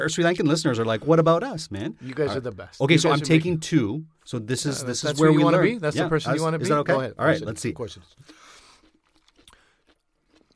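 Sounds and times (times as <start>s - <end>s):
speech: 0.0s - 8.4s
crunchy food being bitten and chewed: 8.1s - 10.5s.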